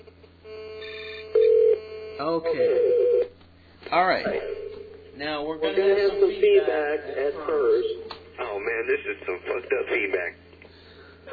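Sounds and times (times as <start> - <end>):
telephone ringing as a caller dials in: 0.5 - 3.2
speech: 2.2 - 3.2, 3.9 - 4.5, 5.2 - 8.0, 8.6 - 10.4.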